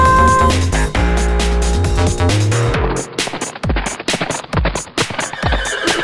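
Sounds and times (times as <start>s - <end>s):
busy upbeat music: 0.0s - 3.8s
sharp rhythmic clopping hits: 0.0s - 6.0s
horse whinnying: 5.2s - 6.0s.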